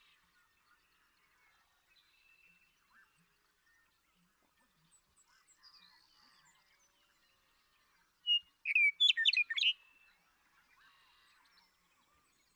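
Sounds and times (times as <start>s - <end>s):
Western meadowlark flutelike phrase ending in a warble: 8.3s - 9.8s.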